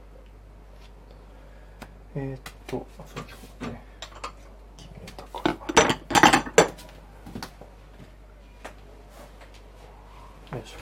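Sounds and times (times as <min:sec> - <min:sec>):
speech: 0:02.1 - 0:03.9
metal utensils clinking: 0:05.4 - 0:06.7.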